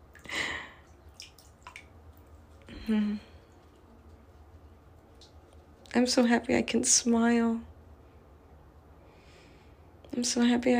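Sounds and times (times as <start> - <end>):
water dripping in a bathtub: 0.0 - 3.8, 5.0 - 6.6
water sloshing in a bathtub: 0.0 - 7.4
faint hiss: 0.0 - 10.7
speech: 2.9 - 3.3, 6.0 - 7.7, 10.2 - 10.7.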